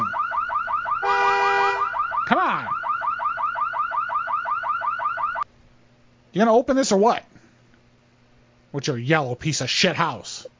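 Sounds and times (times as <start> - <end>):
electronic alarm whooping in rising sweeps: 0.0 - 5.4
speech: 6.3 - 7.3, 8.7 - 10.4.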